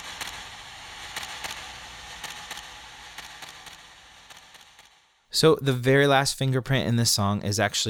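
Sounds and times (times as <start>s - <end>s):
camera shutter clicks: 0.0s - 5.0s
speech: 5.4s - 7.8s.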